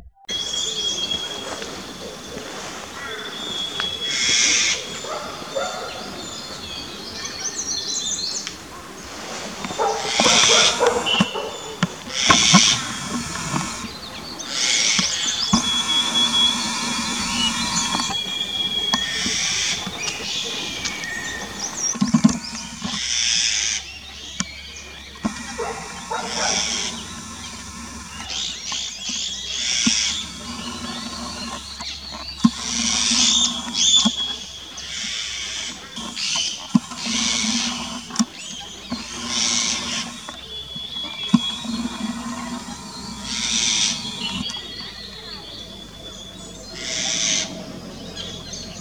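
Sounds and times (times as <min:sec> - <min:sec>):
Eurasian Jay call: 0:00.3 - 0:23.0, 0:24.2 - 0:31.8, 0:32.4 - 0:48.2.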